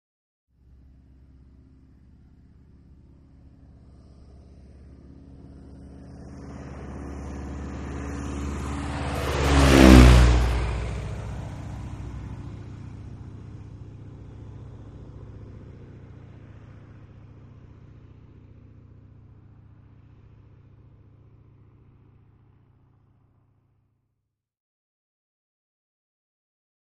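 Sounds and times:
Stearman airplane flying by: 0:00.6 - 0:23.8.

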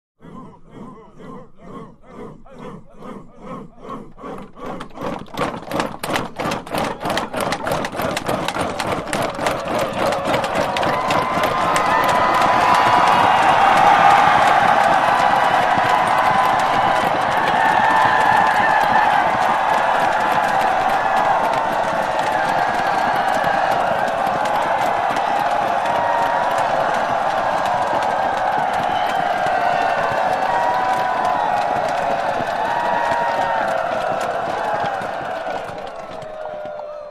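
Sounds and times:
infantry chanting a Zulu chant: 0:00.2 - 0:05.2, 0:08.5 - 0:37.0
infantry cheers: 0:02.6 - 0:37.0.

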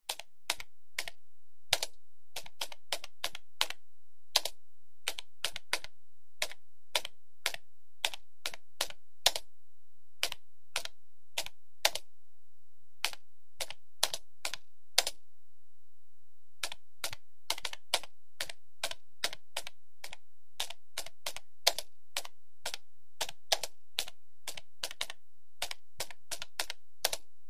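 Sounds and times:
slow typing on laptop keyboard: 0:00.1 - 0:09.5, 0:10.2 - 0:12.1, 0:13.0 - 0:15.2, 0:16.6 - 0:27.3.

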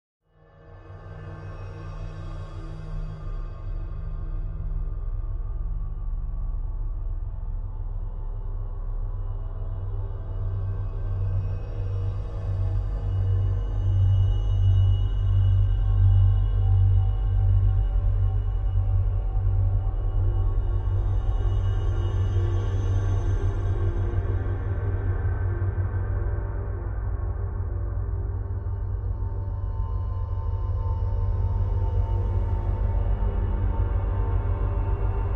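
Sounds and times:
deep space drone bed: 0:00.8 - 0:35.3.

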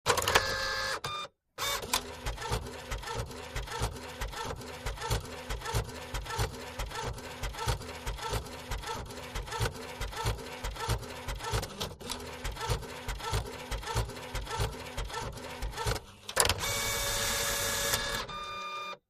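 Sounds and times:
inkjet printer printing on fax scanner copier: 0:00.1 - 0:19.0.

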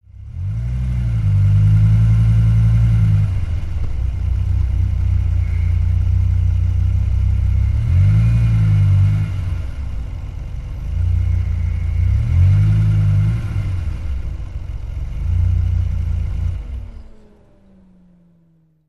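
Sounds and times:
sports car accelerating in reverse: 0:00.0 - 0:18.8.

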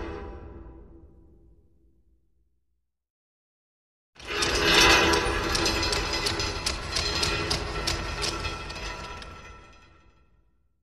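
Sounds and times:
eerie metal chain ratchet clanking with reverb: 0:04.3 - 0:09.4.

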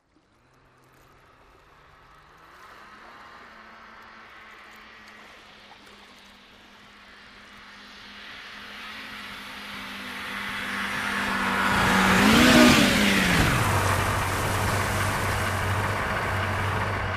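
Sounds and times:
small jet ski engine idling after a jump: 0:09.8 - 0:17.1.

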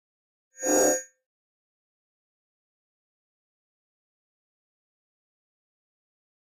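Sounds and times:
electronic mouse-over interface sound: 0:00.6 - 0:01.0.

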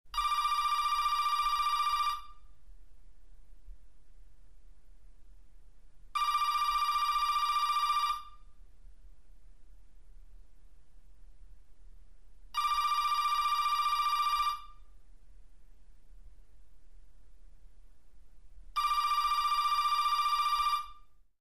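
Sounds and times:
electric telephone ringing: 0:00.2 - 0:02.2, 0:06.2 - 0:08.3, 0:12.6 - 0:14.7, 0:18.8 - 0:21.0.

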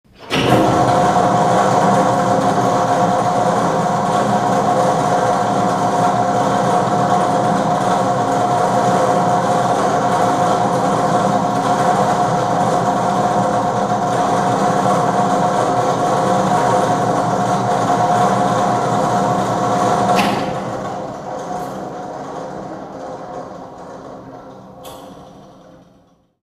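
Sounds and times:
generator switching on and running: 0:00.1 - 0:26.4.

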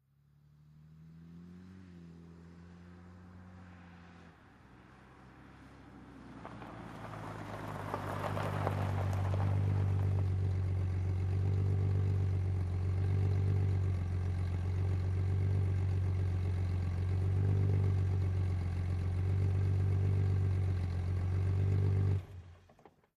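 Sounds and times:
BMW 530i car slowing to a stop: 0:00.2 - 0:23.1.

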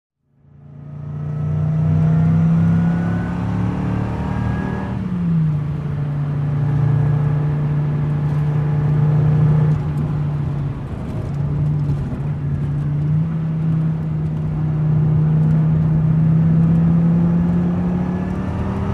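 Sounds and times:
sports car driving over 100 mph: 0:00.4 - 0:18.9.

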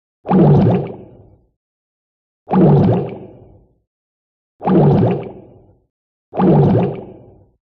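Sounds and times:
bubbles in short bursts: 0:00.2 - 0:01.3, 0:02.5 - 0:03.6, 0:04.6 - 0:05.7, 0:06.4 - 0:07.6.

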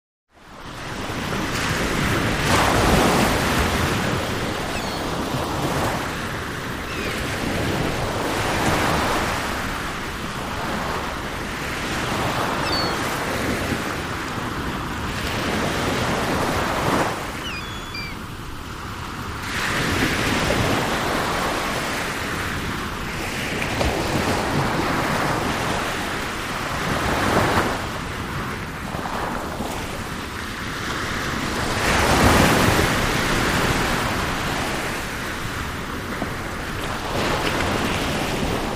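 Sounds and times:
ocean ambience: 0:00.4 - 0:38.7
seagulls: 0:04.5 - 0:05.4, 0:12.5 - 0:13.2, 0:17.3 - 0:18.2.

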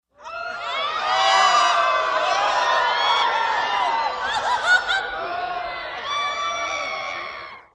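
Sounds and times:
theater crowd screaming: 0:00.1 - 0:07.7
laughter: 0:00.8 - 0:07.6.

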